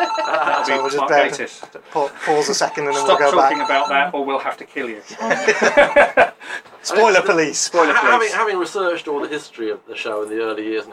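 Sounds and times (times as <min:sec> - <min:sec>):
laughter: 0:00.0 - 0:01.0, 0:05.1 - 0:06.6
telephone ringing: 0:00.0 - 0:01.3, 0:02.6 - 0:04.1
speech: 0:00.6 - 0:10.9.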